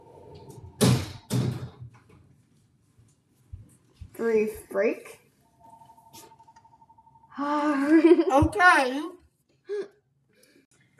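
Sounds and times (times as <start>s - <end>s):
door being closed: 0.6s - 2.0s
speech: 4.2s - 5.2s, 7.4s - 9.9s.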